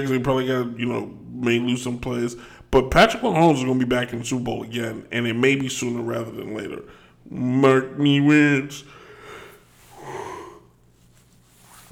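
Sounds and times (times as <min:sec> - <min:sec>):
speech: 0:00.0 - 0:09.0
low room hum: 0:00.0 - 0:11.8
quiet breathing: 0:02.4 - 0:02.8, 0:06.8 - 0:07.3, 0:08.8 - 0:11.8
breathy yawn with faint voiced tone: 0:08.9 - 0:10.8.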